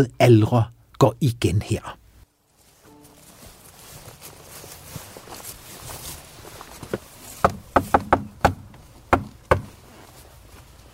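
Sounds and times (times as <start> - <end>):
speech: 0.0 - 2.0
faint rustling: 2.1 - 7.7, 8.7 - 10.9
sharp knocks on a hard surface: 7.4 - 9.7.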